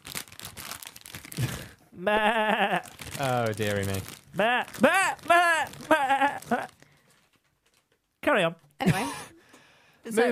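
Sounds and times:
crinkly rustling and crackling: 0:00.0 - 0:01.7, 0:02.7 - 0:08.1
speech: 0:02.0 - 0:06.7, 0:08.3 - 0:09.2, 0:10.1 - 0:10.2.

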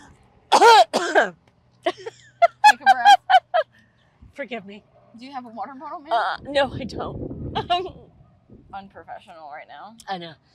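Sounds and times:
person coughing after swallowing the wrong way: 0:00.5 - 0:01.3
speech: 0:01.2 - 0:01.4, 0:04.4 - 0:08.0, 0:08.7 - 0:10.5
laughter: 0:01.9 - 0:03.6.

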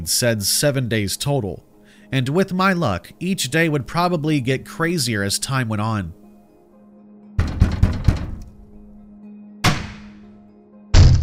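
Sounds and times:
speech: 0:00.0 - 0:06.2
loud banging on a door: 0:07.4 - 0:08.7.

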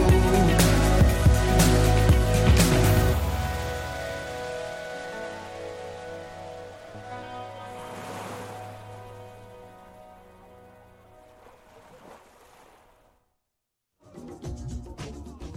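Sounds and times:
song closing notes: 0:00.2 - 0:11.1
waves lapping on a palm beach at sunset: 0:02.7 - 0:13.2.

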